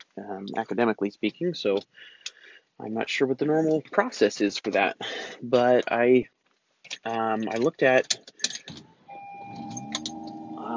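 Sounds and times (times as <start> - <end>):
speech: 0.2 - 8.9
car starting up: 8.8 - 10.7
car electronic warning tone: 9.1 - 10.7.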